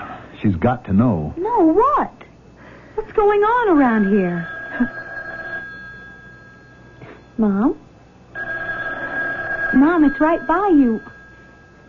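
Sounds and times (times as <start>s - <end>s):
faint steady electronic hum: 0.0s - 11.8s
speech: 0.4s - 2.2s, 3.0s - 5.0s, 7.4s - 7.8s, 9.7s - 11.1s
telephone bell ringing: 3.7s - 7.2s, 8.3s - 11.8s.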